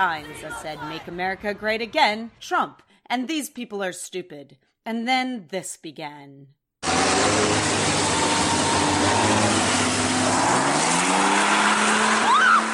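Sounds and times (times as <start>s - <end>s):
speech: 0.0s - 7.7s
truck engine roaring and revving during a burnout: 6.8s - 12.7s
truck tires screeching and squealing in a burnout: 6.8s - 12.7s.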